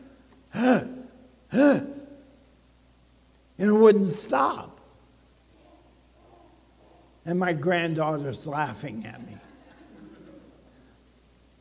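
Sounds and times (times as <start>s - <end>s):
person imitating gasping for breath: 0.5s - 0.9s, 1.5s - 1.9s
speech: 1.6s - 1.9s, 3.6s - 4.7s, 7.2s - 9.5s.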